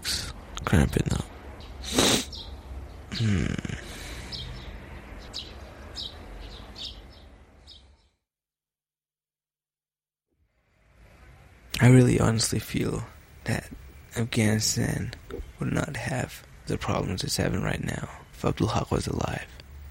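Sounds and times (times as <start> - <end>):
birds chirping: 0.0 - 8.2, 11.8 - 19.7
outdoor noise: 0.0 - 8.2, 10.4 - 19.8
speech: 0.7 - 1.2, 3.2 - 3.6, 11.8 - 19.6.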